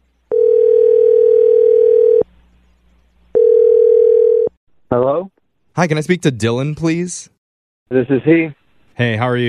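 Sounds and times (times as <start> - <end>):
telephone dial tone: 0.3 - 2.3, 3.3 - 4.5
speech: 5.7 - 9.4.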